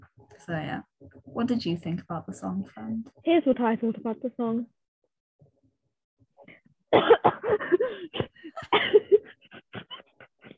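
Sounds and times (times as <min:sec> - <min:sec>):
speech: 0:00.5 - 0:04.8, 0:06.9 - 0:09.3
coughing and throat clearing after something went down the throat: 0:06.9 - 0:10.5.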